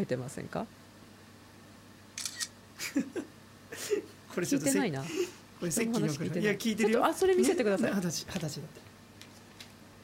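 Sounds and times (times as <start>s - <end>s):
speech: 0.0s - 0.8s, 4.4s - 8.9s
camera shutter clicks as a photo is taken: 2.2s - 2.6s.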